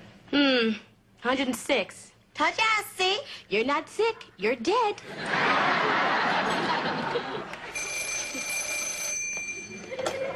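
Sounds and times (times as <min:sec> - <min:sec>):
speech: 0:00.3 - 0:07.5
laughter: 0:05.0 - 0:08.4, 0:09.7 - 0:10.3
phone ringing: 0:07.6 - 0:10.3.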